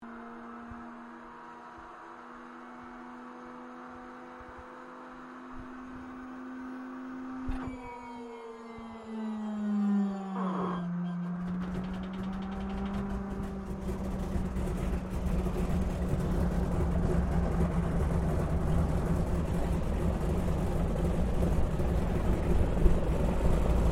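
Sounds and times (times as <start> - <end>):
AT-6D Harvard Mk III training aircraft engine startup heard from interior: 7.7 - 23.9.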